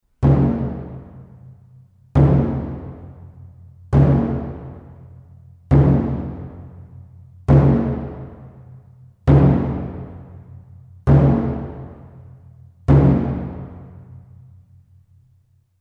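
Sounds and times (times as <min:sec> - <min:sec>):
odaiko taiko drum sequence: 0:00.1 - 0:01.5, 0:02.2 - 0:12.3, 0:12.9 - 0:14.2.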